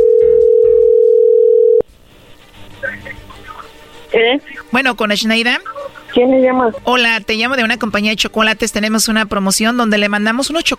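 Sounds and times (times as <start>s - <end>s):
telephone dial tone while dialing a call: 0.0s - 1.8s
speech: 4.2s - 10.7s.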